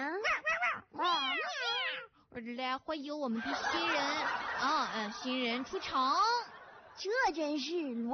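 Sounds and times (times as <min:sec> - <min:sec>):
cat meowing at a wedding celebration: 0:00.0 - 0:02.1
speech: 0:02.4 - 0:06.4, 0:07.0 - 0:08.1
laughter: 0:03.4 - 0:07.3.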